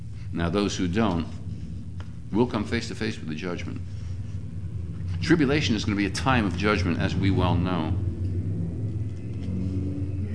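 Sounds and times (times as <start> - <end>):
speech: 0.3 - 1.4, 2.3 - 4.0, 5.2 - 8.1
motorcycle engines rumbling and revving outside: 4.2 - 10.3.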